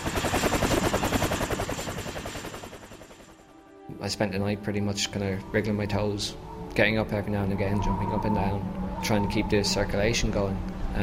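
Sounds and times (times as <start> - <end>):
helicopter flying overhead with rotor chopping: 0.0 - 3.5
speech: 4.0 - 11.0.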